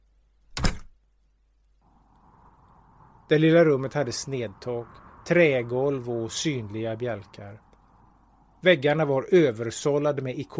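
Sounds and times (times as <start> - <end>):
door being pulled shut: 0.5 - 0.9
speech: 3.3 - 7.6, 8.6 - 10.5.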